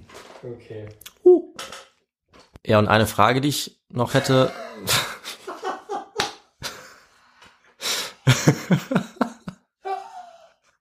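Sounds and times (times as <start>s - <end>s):
speech: 0.4s - 1.1s, 2.7s - 5.0s
person clearing throat: 4.1s - 5.2s
laughter: 4.3s - 7.1s, 8.2s - 10.4s.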